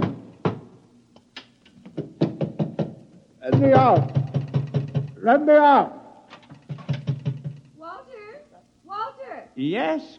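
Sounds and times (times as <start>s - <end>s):
hollow knocks: 0.0s - 0.8s, 1.8s - 5.2s, 6.3s - 7.8s
speech: 3.5s - 4.2s, 5.2s - 6.0s, 9.6s - 10.1s.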